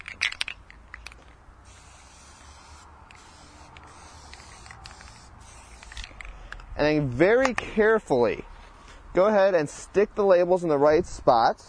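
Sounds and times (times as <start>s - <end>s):
aerosol can spraying adhesive: 1.7s - 6.0s
speech: 6.8s - 8.5s, 9.2s - 11.6s.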